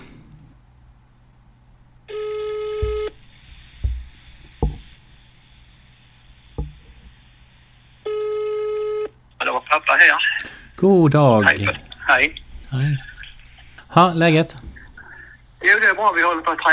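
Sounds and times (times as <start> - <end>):
telephone ringback tone while calling: 2.1 - 3.2, 8.1 - 9.1
handling knocks: 2.8 - 5.0, 6.6 - 7.1
speech: 9.8 - 13.0, 14.0 - 14.7, 15.7 - 16.7.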